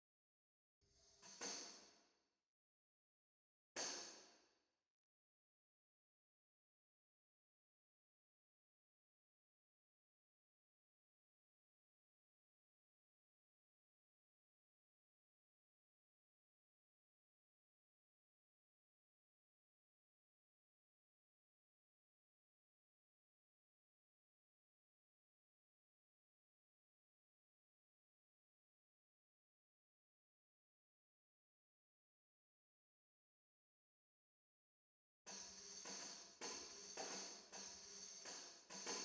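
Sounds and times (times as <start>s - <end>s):
tambourines: 0.9s - 2.0s, 3.8s - 4.3s, 35.3s - 39.0s.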